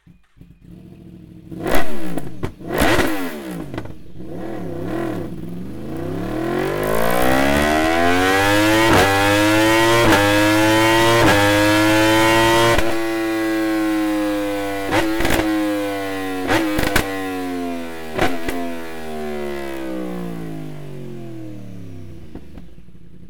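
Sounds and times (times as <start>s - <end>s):
slip-on motorcycle exhaust with optional link pipe: 0.0s - 23.2s.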